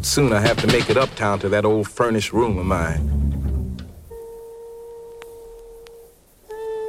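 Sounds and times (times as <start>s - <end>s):
speech: 0.0s - 3.2s
jazz instrument holding sustained notes: 2.0s - 6.8s.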